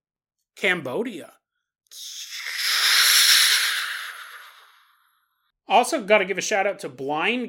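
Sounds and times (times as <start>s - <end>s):
speech: 0.6s - 2.3s, 5.7s - 7.4s
voice imitating a jet engine whoosh: 1.9s - 4.8s.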